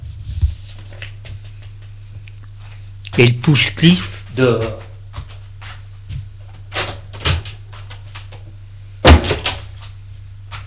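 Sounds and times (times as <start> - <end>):
steady low electrical hum: 0.0 - 10.6
speech: 3.2 - 4.8
door shutting with a thud: 9.0 - 9.7.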